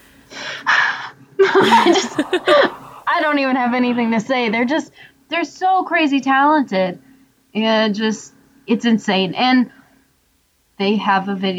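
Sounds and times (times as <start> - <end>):
laughter: 1.4 - 4.6
person breathing heavily in excitement: 1.6 - 3.8
speech: 3.2 - 9.8, 10.8 - 11.5.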